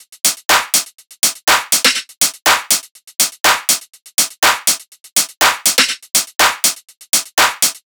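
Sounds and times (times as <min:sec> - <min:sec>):
top drum loop: 0:00.5 - 0:00.8, 0:01.5 - 0:02.8, 0:03.5 - 0:03.8, 0:04.4 - 0:04.8, 0:05.4 - 0:07.8.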